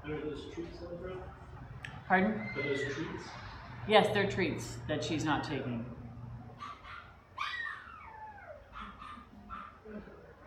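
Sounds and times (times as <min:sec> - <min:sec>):
speech: 0:00.1 - 0:06.0
stressed female shelter dog whimpering and whining anxiously: 0:06.7 - 0:09.7.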